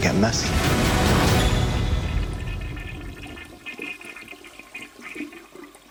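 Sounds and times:
speech: 0.0s - 0.9s
toilet flushing with rushing water and tank refilling: 0.4s - 5.9s.

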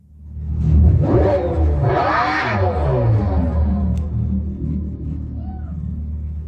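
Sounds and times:
supercharged V8 car engine revving and droning: 0.1s - 6.4s.

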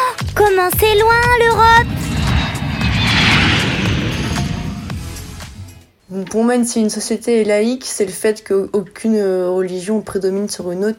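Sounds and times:
speech: 0.6s - 2.0s, 6.2s - 10.9s
airplane taking off: 0.8s - 5.7s.

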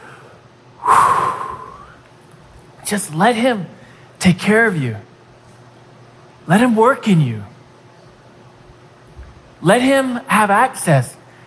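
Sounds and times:
deep breath with faint whistling tone: 0.0s - 2.0s
speech: 2.9s - 5.1s, 6.4s - 7.5s, 9.6s - 11.2s.

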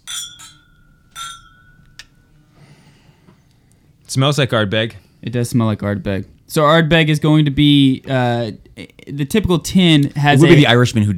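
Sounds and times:
glasses clinking in a toast: 0.0s - 2.4s
speech: 4.1s - 11.1s.

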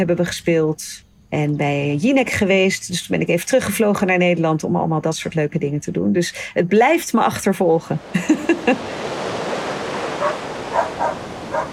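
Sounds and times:
speech: 0.0s - 9.1s
ocean waves on a beach in Bali: 7.8s - 11.7s
laughter: 8.1s - 9.0s
dogs being walked along the beach barking: 10.0s - 11.7s.

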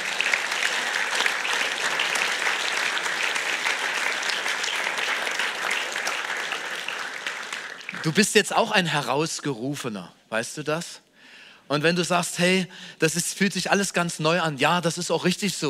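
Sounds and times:
applause from a large audience: 0.0s - 8.3s
speech: 8.0s - 11.0s, 11.7s - 15.6s.

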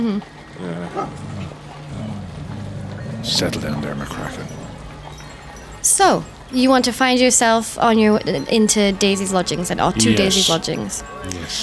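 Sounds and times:
speech: 0.0s - 1.6s, 3.2s - 4.6s, 6.0s - 11.6s
Irish wolfhound growling: 0.6s - 6.6s
Irish wolfhound barking: 0.9s - 5.5s.

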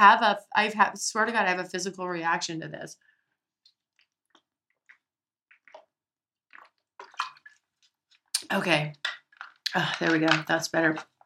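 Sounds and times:
speech: 0.0s - 3.1s, 8.5s - 11.1s
person drinking water: 3.6s - 10.1s.

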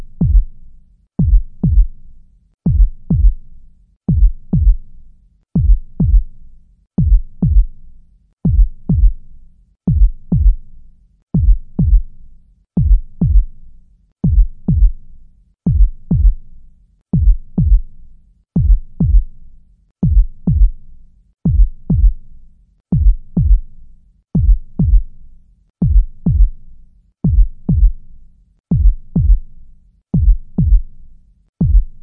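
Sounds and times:
heartbeat thumping in deep lub-dub knocks: 0.0s - 0.4s, 1.2s - 1.9s, 2.7s - 3.4s, 4.1s - 4.8s, 5.6s - 6.2s, 7.0s - 7.7s, 8.5s - 9.1s, 9.9s - 10.6s, 11.4s - 12.0s, 12.8s - 13.4s, 14.2s - 14.9s, 15.7s - 16.4s, 17.2s - 17.8s, 18.6s - 19.2s, 20.0s - 20.7s, 21.5s - 22.2s, 22.9s - 23.6s, 24.4s - 25.0s, 25.8s - 26.5s, 27.3s - 27.9s, 28.7s - 29.4s, 30.2s - 30.8s, 31.6s - 32.0s.

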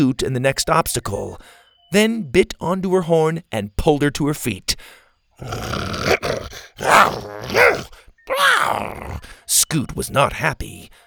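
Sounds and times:
speech: 0.0s - 11.0s
deep irritated dinosaur growl: 5.4s - 9.4s.

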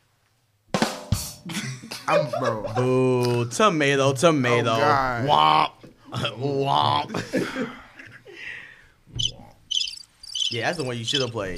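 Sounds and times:
laughter: 1.5s - 3.4s, 5.8s - 8.4s
speech: 1.5s - 7.8s, 10.5s - 11.5s
birds chirping: 9.1s - 11.5s.

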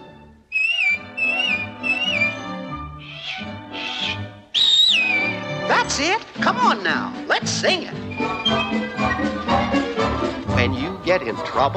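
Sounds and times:
soft orchestral music: 0.0s - 11.7s
person whistling: 0.5s - 5.4s, 8.1s - 9.4s
speech: 5.9s - 8.9s, 10.6s - 11.7s.

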